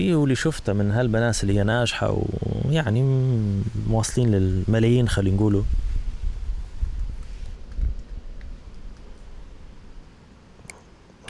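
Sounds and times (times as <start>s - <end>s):
speech: 0.0s - 5.9s
wind buffeting the microphone: 0.0s - 10.2s
faint rustle: 0.0s - 11.2s.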